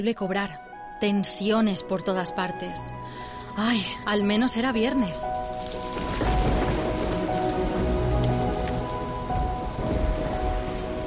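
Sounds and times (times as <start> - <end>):
speech: 0.0 - 5.8
steady rain pouring outdoors: 4.8 - 11.0.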